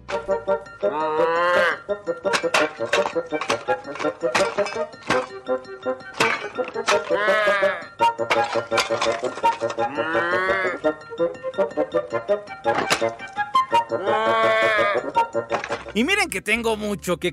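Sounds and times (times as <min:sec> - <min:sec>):
speech: 0:00.3 - 0:17.3
angry little cartoon bull bellowing in wavering moos: 0:00.8 - 0:01.9, 0:07.1 - 0:07.9, 0:09.8 - 0:10.9, 0:13.9 - 0:15.2
sharp thumps and clatters: 0:02.2 - 0:07.2, 0:08.2 - 0:09.9, 0:12.7 - 0:13.3, 0:15.4 - 0:16.0.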